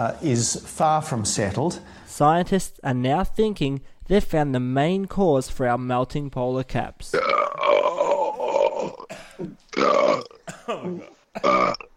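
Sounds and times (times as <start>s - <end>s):
speech: 0.0s - 7.3s, 9.4s - 11.9s
man belching loudly: 7.1s - 11.9s.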